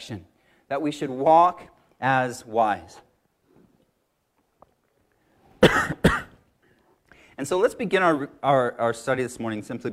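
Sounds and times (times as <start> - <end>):
speech: 0.0 - 3.1, 7.4 - 9.9
person coughing hoarsely on a mint caught in the throat: 5.6 - 6.4.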